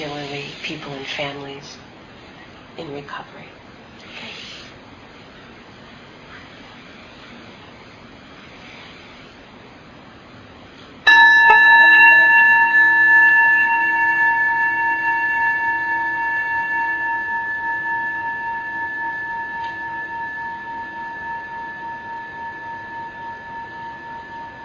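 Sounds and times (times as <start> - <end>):
speech: 0.7 - 1.9, 2.8 - 3.6
meditation bell ringing: 11.1 - 24.6.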